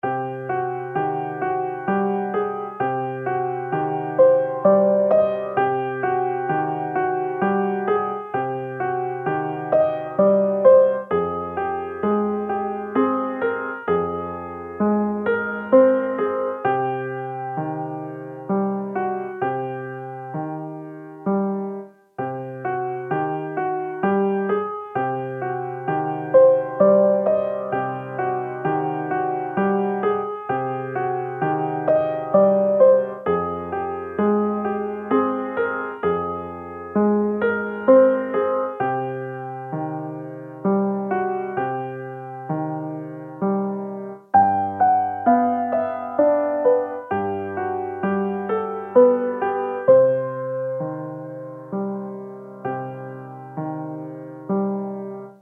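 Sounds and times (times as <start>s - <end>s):
simple piano loop: 0.0s - 55.4s.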